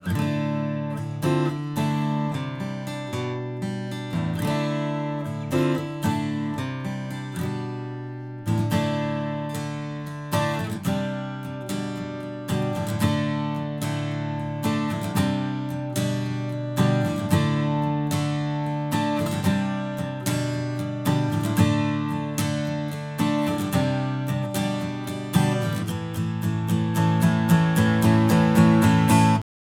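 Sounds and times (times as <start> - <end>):
D35 strum: 0.0 - 29.4.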